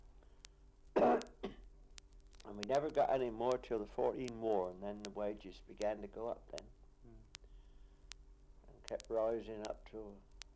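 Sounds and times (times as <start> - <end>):
low steady hum: 0.0 - 10.5
person coughing: 1.0 - 1.6
speech: 2.5 - 6.8, 8.9 - 10.3.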